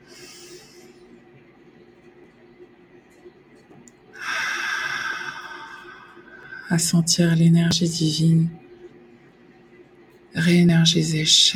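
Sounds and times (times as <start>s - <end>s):
deep breaths during a guided meditation: 4.2s - 6.7s
speech: 6.7s - 8.6s, 10.4s - 11.5s.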